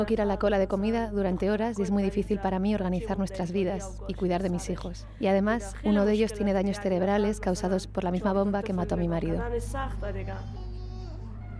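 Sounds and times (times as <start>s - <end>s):
speech: 0.0s - 10.7s
steady low hum: 0.0s - 11.5s
young child crying in high-pitched wails and whimpering: 10.4s - 11.5s.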